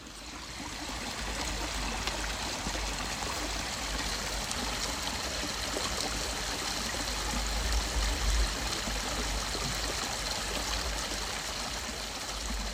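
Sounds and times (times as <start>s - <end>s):
forest stream of moderate width flowing steadily: 0.0s - 12.7s.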